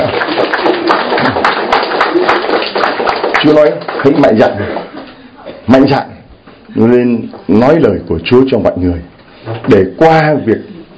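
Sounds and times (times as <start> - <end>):
crowd applauding: 0.0 - 5.1
speech: 3.4 - 4.9, 5.7 - 6.1, 6.7 - 10.7.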